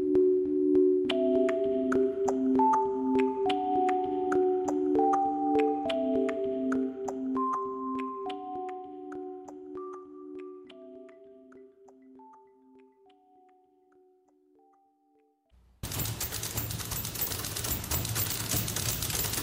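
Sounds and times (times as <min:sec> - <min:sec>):
soft sustained musical tones: 0:00.0 - 0:15.4
many typewriters played as an orchestra in a documentary film soundtrack: 0:15.8 - 0:19.4.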